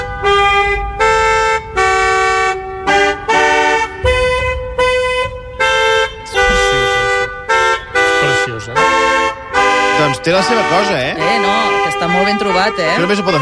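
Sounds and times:
mini car horns playing an anthem melody: 0.0s - 13.3s
speech: 10.3s - 11.4s, 12.2s - 13.3s.

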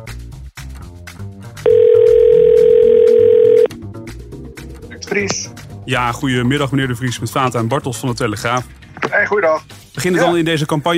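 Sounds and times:
telephone dial tone on an outgoing call: 1.7s - 3.7s
speech: 5.2s - 10.9s.

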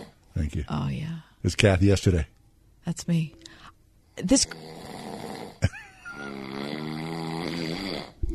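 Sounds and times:
speech: 0.4s - 5.0s
person snoring: 4.5s - 8.3s.

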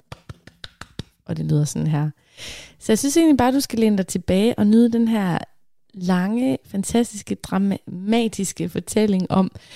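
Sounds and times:
quick hand claps in a steady even rhythm: 0.0s - 1.2s
speech: 1.3s - 9.7s.

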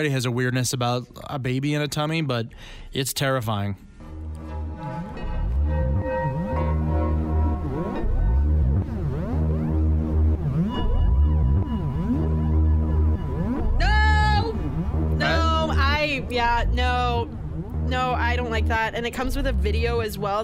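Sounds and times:
speech: 0.0s - 3.9s, 16.3s - 20.4s
synthesized MIDI-style tune generated from fetal movements: 4.0s - 20.4s
warbling, sliding electronic tones swooping up and down: 4.1s - 20.4s.

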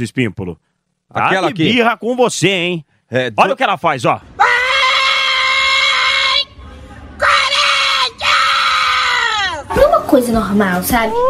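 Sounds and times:
speech: 0.0s - 4.3s, 10.3s - 11.2s
woman football fan screaming: 4.4s - 6.5s, 7.2s - 9.7s.

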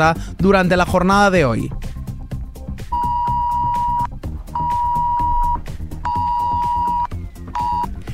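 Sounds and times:
speech: 0.0s - 1.9s
dense low music or noise: 0.0s - 8.1s
mobile phone emergency alert electronic tones around 1 kHz: 2.9s - 7.9s.

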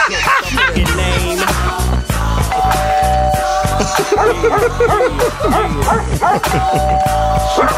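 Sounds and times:
laughter: 0.0s - 2.3s, 3.6s - 7.7s
dog barking loudly in rapid yaps: 4.2s - 6.6s, 7.5s - 7.7s.

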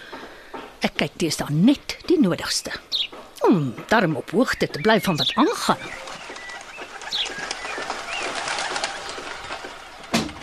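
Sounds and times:
speech: 0.8s - 6.0s
doves cooing: 2.9s - 10.4s.

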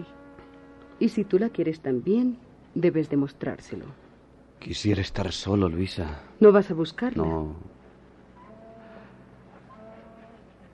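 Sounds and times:
noise: 0.0s - 10.7s
speech: 1.0s - 4.0s, 4.6s - 7.8s
ship's siren blowing a long low note: 8.4s - 10.5s.

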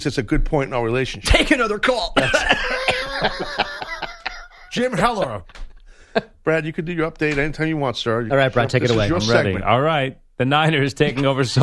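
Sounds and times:
speech: 0.0s - 3.8s, 4.7s - 11.6s
person coughing: 2.2s - 4.7s
laughter: 2.2s - 5.4s.

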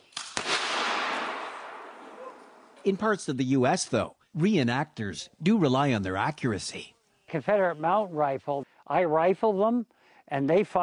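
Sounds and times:
cannon firing a blank shot for show: 0.2s - 2.1s
speech: 2.8s - 10.8s.

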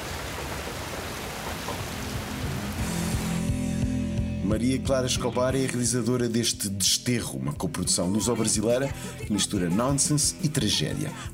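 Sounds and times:
steady dense rain pouring down: 0.0s - 3.5s
speech: 4.5s - 11.3s.

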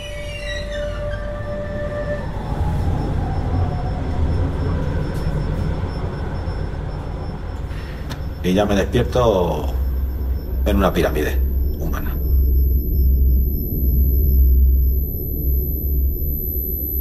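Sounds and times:
train starting to move off with a steady low rumble: 0.0s - 13.0s
faint high squealing: 0.0s - 13.1s
bright tones: 0.0s - 16.9s
speech: 8.4s - 9.8s, 10.7s - 12.1s.

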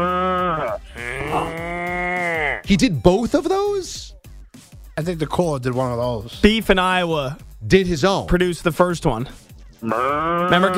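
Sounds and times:
person imitating a cow mooing: 0.0s - 2.7s, 9.8s - 10.7s
speech: 2.7s - 4.2s, 5.0s - 10.7s.

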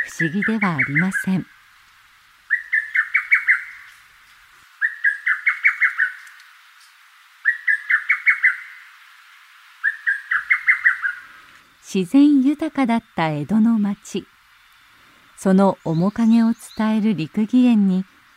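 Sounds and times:
lesser cuckoo calling in a garden: 0.0s - 1.5s, 2.5s - 3.9s, 4.8s - 6.3s, 7.4s - 8.8s, 9.8s - 11.3s
speech: 0.1s - 1.6s, 11.9s - 14.3s, 15.4s - 18.3s.

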